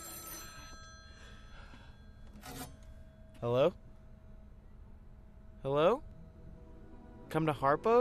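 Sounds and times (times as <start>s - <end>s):
payphone ringing with metallic bell tone: 0.0s - 3.3s
speech: 3.4s - 3.8s, 5.6s - 6.1s, 7.3s - 7.9s.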